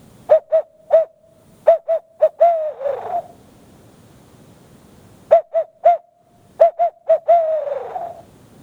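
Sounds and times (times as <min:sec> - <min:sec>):
owl hoot blown on a turkey-hunting locator call: 0:00.0 - 0:03.5, 0:05.3 - 0:08.4.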